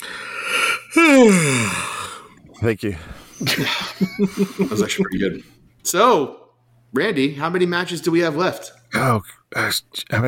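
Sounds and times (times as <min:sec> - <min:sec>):
person yawning: 0:00.0 - 0:02.3
speech: 0:02.6 - 0:10.2
laughter: 0:03.4 - 0:05.4.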